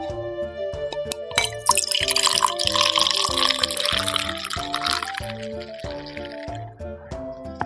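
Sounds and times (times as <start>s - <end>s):
steady tonal music: 0.0s - 7.6s
freshly opened beer pouring into a glass: 1.2s - 6.6s.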